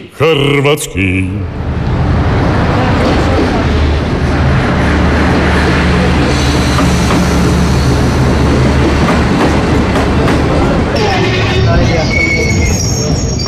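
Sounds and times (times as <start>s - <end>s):
express train arriving at station platform: 0.2s - 13.4s
speech: 0.3s - 1.7s
clattering train wheels: 2.3s - 13.4s
thin metallic squeal of slowing train: 11.5s - 13.4s.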